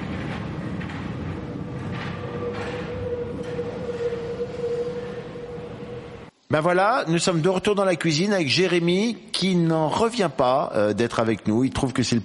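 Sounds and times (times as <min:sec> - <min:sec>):
subway train running heard from inside: 0:00.0 - 0:06.4
speech: 0:06.5 - 0:12.2.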